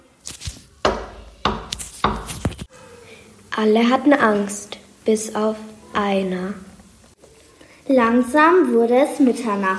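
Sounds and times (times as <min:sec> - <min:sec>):
firm knocking on a wooden door: 0:00.8 - 0:02.3
speech: 0:03.6 - 0:06.7, 0:07.9 - 0:09.7.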